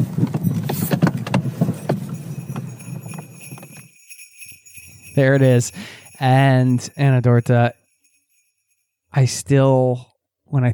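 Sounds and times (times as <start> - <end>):
horse hooves clip-clopping: 0.2 - 7.4
sleigh bells on a horse pulling an open sleigh through snowy fields: 0.3 - 9.0
speech: 5.2 - 7.8, 9.1 - 10.7.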